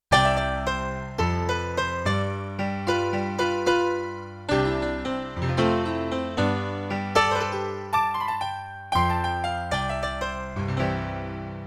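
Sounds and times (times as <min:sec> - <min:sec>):
jazz piano performance on a Yamaha TX16W sampler: 0:00.1 - 0:11.6.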